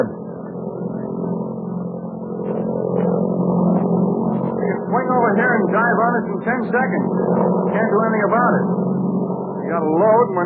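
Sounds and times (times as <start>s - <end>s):
heavy airplane engine roaring in flight: 0.0s - 10.4s
speech: 5.8s - 8.8s, 9.7s - 10.4s.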